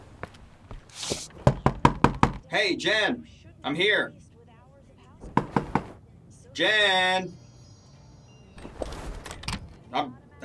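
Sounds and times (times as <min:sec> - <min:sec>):
low hum: 0:00.0 - 0:10.4
knocking on a door: 0:01.4 - 0:02.4, 0:05.2 - 0:06.0
speech: 0:02.5 - 0:04.2, 0:06.6 - 0:07.4, 0:09.9 - 0:10.4.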